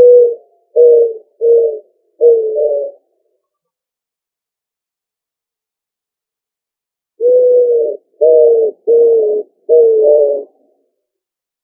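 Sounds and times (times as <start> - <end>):
pigeon cooing: 0.0 - 3.0, 7.2 - 10.6.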